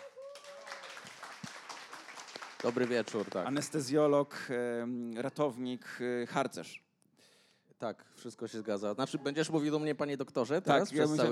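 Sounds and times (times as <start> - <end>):
audience applause: 0.0 - 3.8
speech: 2.6 - 6.8, 7.8 - 11.3.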